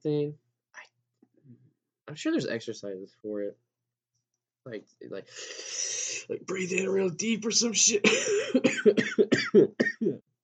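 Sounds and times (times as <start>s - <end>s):
speech: 0.0s - 0.4s, 2.1s - 3.6s, 4.6s - 10.3s
person coughing in a hacking fit: 8.0s - 10.2s.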